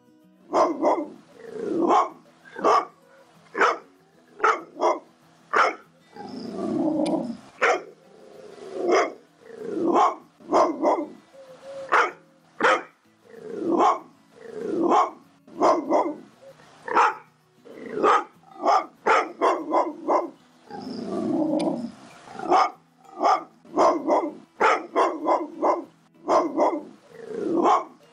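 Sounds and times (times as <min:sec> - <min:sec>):
large pitbull dog barking: 0:00.5 - 0:05.8, 0:07.6 - 0:07.9, 0:08.8 - 0:09.2, 0:09.8 - 0:11.2, 0:11.9 - 0:13.0, 0:13.7 - 0:14.1, 0:14.8 - 0:16.2, 0:16.9 - 0:17.3, 0:17.9 - 0:20.4, 0:22.4 - 0:28.0
large pitbull dog growling: 0:01.4 - 0:03.8, 0:06.1 - 0:12.2, 0:13.2 - 0:16.2, 0:16.9 - 0:25.8, 0:26.4 - 0:28.0.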